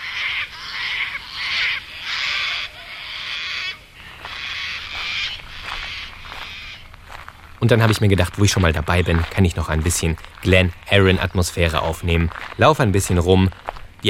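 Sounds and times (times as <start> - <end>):
sulphur-crested cockatoos screeching: 0.0 - 7.3
speech: 7.6 - 14.0.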